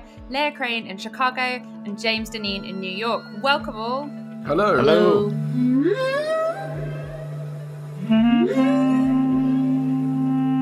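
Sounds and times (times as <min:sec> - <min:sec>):
speech: 0:00.3 - 0:06.3
long swooping whale-inspired tones sliding upward: 0:02.9 - 0:10.6.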